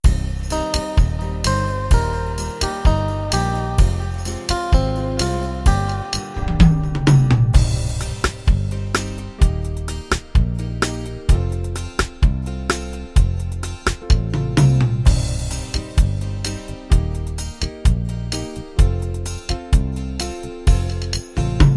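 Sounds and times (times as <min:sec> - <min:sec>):
1960s pop guitar rhythms: 0:00.0 - 0:21.7.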